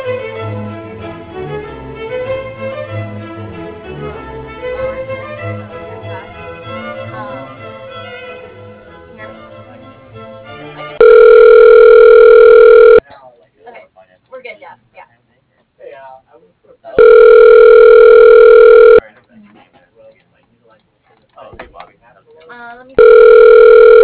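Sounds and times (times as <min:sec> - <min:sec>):
telephone ringback tone while a call is transferred to voicemail: 0:11.0 - 0:13.0, 0:17.0 - 0:19.0, 0:23.0 - 0:24.0
low noise: 0:11.0 - 0:24.0.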